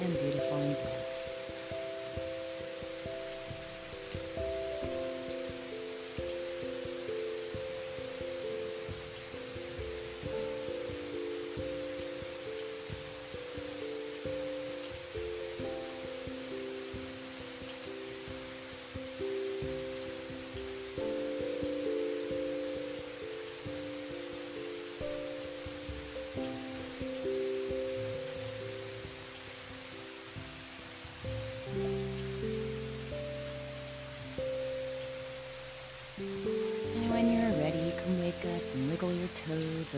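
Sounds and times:
rain pattering on a hard surface: 0.0 - 39.9
soft sustained musical tones: 0.0 - 39.9.

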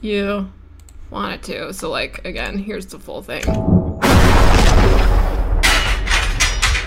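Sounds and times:
speech: 0.0 - 5.3
loud heavy explosion: 3.5 - 5.7
debris clattering across a hard floor: 4.5 - 6.8.

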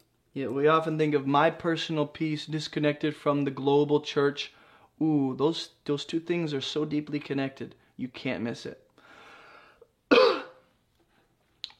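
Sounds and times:
speech: 0.4 - 8.8
harsh throaty cough: 10.1 - 10.7.

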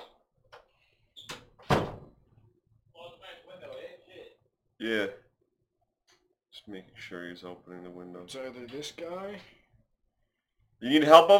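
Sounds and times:
door closing with a thud: 1.3 - 2.2
speech: 4.8 - 5.2, 6.6 - 9.6, 10.8 - 11.3.

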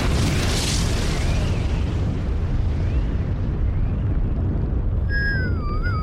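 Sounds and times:
explosion blast as a place blows up during a spacecraft escape: 0.0 - 6.0
thin whistling tones: 5.1 - 6.0.

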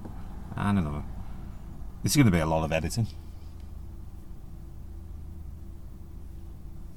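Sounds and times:
car engine drone: 0.0 - 6.9
speech: 0.7 - 1.2, 2.0 - 3.2.

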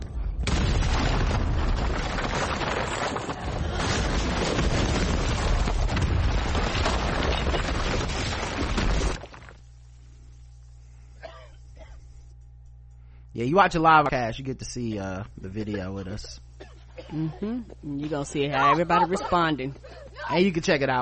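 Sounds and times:
explosion in a played video clip: 0.3 - 9.2
speech: 13.4 - 16.4, 17.1 - 20.9.

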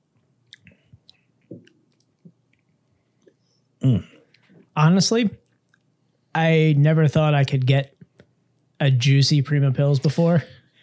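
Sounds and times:
wet lip clicks and smacks sipping beer: 0.4 - 3.4, 5.4 - 5.9
speech: 3.8 - 4.1, 4.8 - 5.4, 6.4 - 7.9, 8.8 - 10.6.

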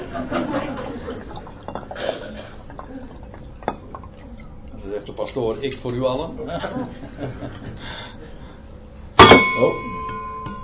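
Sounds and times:
laughter: 0.0 - 1.5, 6.3 - 8.6
drink poured into a glass: 0.8 - 4.8
glassware clinking: 1.4 - 4.2, 9.2 - 10.6
speech: 5.0 - 8.4, 9.6 - 9.9.

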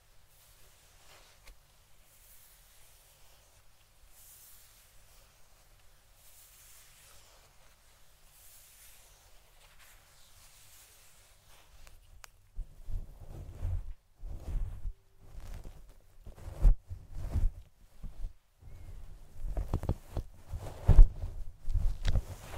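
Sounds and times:
brushing on a fluffy microphone: 0.0 - 22.5
scalp massage on a fluffy microphone: 0.3 - 17.7.

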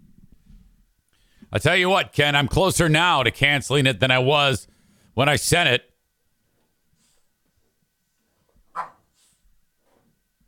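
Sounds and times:
speech: 1.5 - 5.8
faint shuffle: 6.5 - 10.2
dog barking: 8.7 - 9.0.

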